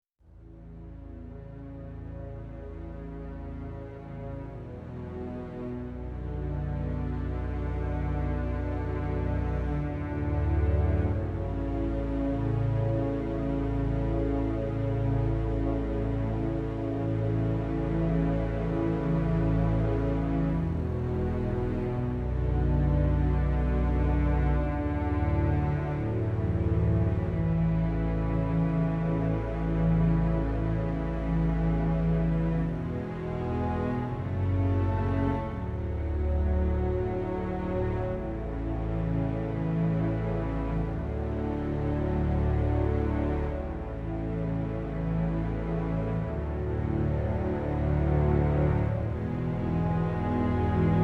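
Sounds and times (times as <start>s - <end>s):
strings: 0.2s - 51.0s.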